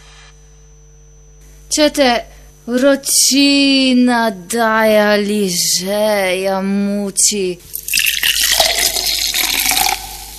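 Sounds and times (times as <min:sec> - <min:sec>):
speech: 0:01.7 - 0:07.8
cold fizzy drink being poured with hissing bubbles: 0:07.7 - 0:10.3.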